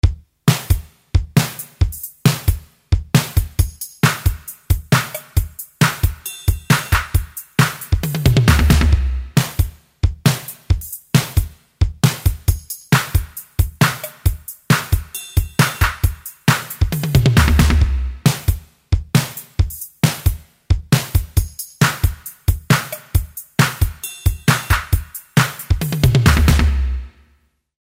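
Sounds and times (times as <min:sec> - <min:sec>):
drum machine: 0:00.0 - 0:27.2.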